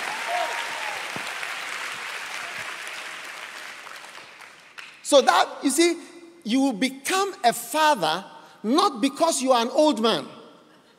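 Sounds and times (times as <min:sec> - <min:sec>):
audience clapping: 0:00.0 - 0:05.1
speech: 0:05.1 - 0:10.4.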